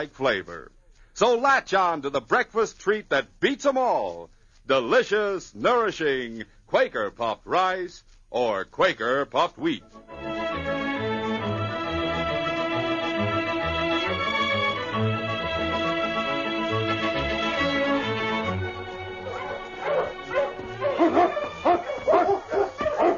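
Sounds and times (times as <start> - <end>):
speech: 0.0 - 10.7
sustained orchestral passage: 9.8 - 23.1
team of sled dogs barking and yipping while racing over frozen surface: 18.9 - 23.1.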